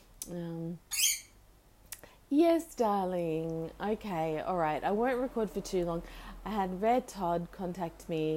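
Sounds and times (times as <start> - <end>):
speech: 0.3 - 0.9, 2.3 - 8.3
pet bird calling with a nasal voice-like note: 0.9 - 1.4.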